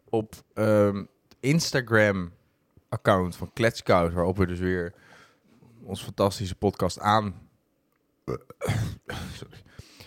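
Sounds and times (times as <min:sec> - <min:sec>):
speech: 0:00.1 - 0:05.1, 0:05.8 - 0:07.4, 0:08.3 - 0:09.6
long gravelly burp: 0:08.3 - 0:09.1.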